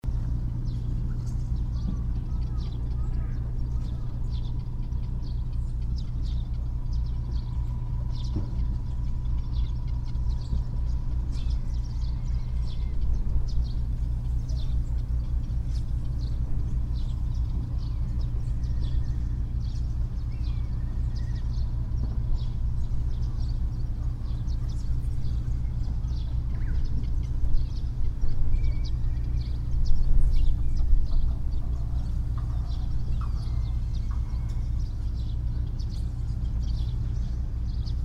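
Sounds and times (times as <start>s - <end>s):
fishing port ambience: 0.1s - 38.0s.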